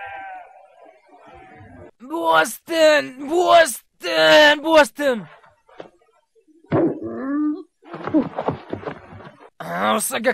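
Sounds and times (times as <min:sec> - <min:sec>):
cartoon sheep bleating: 0:00.0 - 0:00.8
speech: 0:02.1 - 0:05.4, 0:08.1 - 0:08.5, 0:09.6 - 0:10.3.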